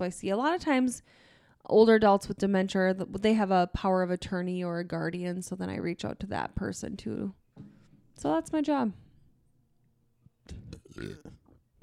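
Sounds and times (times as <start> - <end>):
speech: 0.0 - 9.0, 10.5 - 11.8
guttural burp: 10.5 - 11.8.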